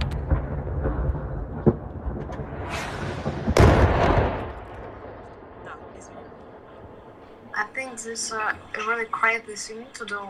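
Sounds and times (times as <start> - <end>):
bomb exploding outside an apartment building: 0.0 - 7.6
sharp bangs: 0.0 - 8.0
speech: 8.0 - 10.2.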